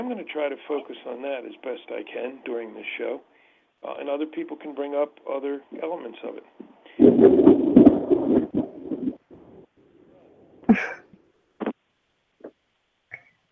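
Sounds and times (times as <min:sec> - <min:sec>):
speech: 0:00.0 - 0:08.4, 0:10.7 - 0:11.0
deep rumbling roll of thunder: 0:07.0 - 0:09.7.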